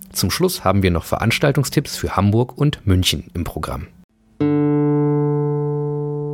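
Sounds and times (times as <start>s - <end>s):
speech: 0.2s - 4.0s
plucked guitar string ringing: 4.4s - 6.3s.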